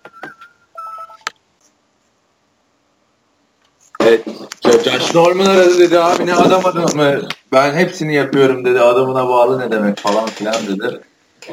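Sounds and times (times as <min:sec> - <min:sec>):
phone giving short electronic beeps while being checked: 0:00.0 - 0:01.4
speech: 0:04.0 - 0:11.1.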